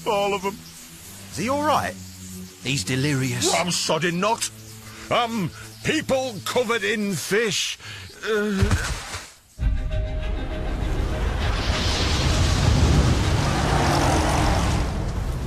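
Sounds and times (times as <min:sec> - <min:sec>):
road noise: 0:00.0 - 0:06.7, 0:10.4 - 0:15.4
speech: 0:00.0 - 0:09.1
car engine roar: 0:10.7 - 0:15.4.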